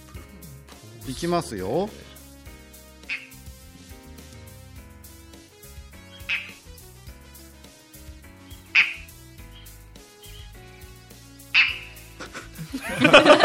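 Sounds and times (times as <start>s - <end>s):
speech: 1.0s - 2.1s
low harsh frog-like croaking bird call: 6.0s - 6.6s, 8.4s - 11.0s, 11.6s - 12.0s
laughter: 12.2s - 13.4s.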